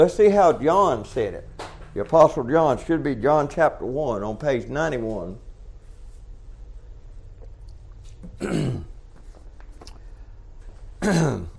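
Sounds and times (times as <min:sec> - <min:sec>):
speech: 0:00.0 - 0:05.4, 0:08.4 - 0:08.9, 0:11.1 - 0:11.5
harsh throaty coughs from a speaker: 0:08.2 - 0:09.0, 0:11.0 - 0:11.5.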